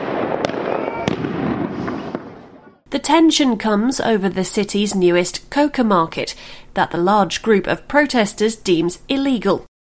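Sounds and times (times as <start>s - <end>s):
homemade firecrackers exploding during street riot in La Paz Bolivia: 0.0s - 2.8s
speech: 3.0s - 9.7s.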